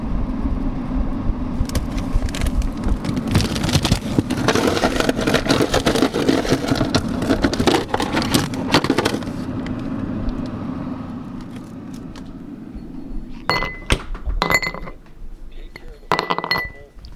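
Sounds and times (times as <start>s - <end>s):
steady low hum: 0.0s - 17.1s
ice cubes clinking against a glass of scotch: 13.5s - 15.0s, 15.8s - 17.0s.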